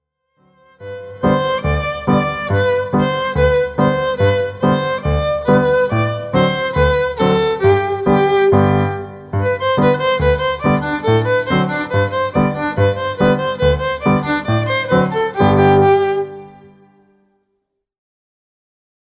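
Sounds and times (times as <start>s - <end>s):
fiddle playing: 0.5s - 17.2s.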